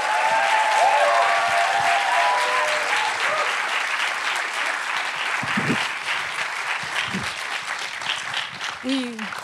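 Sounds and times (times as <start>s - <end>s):
faint voices and whoops: 0.0s - 3.6s
large audience applause: 0.0s - 9.4s.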